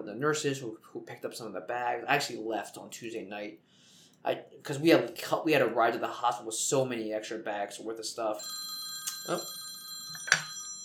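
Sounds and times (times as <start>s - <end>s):
speech: 0.1s - 9.6s
phone ringing with an electronic ringtone: 8.4s - 10.8s.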